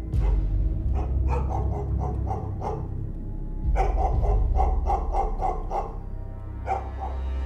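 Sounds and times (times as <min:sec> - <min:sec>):
pet dog barking: 0:00.2 - 0:03.0, 0:03.7 - 0:06.1, 0:06.6 - 0:07.3.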